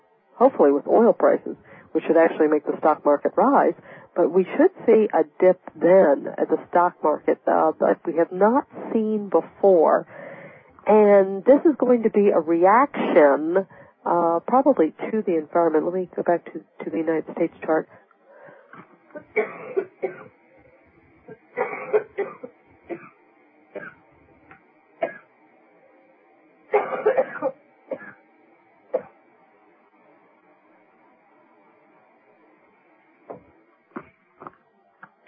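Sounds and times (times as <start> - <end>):
speech: 0.4 - 10.2, 10.8 - 18.0
person coughing: 19.2 - 20.3, 21.6 - 23.1, 26.7 - 28.2.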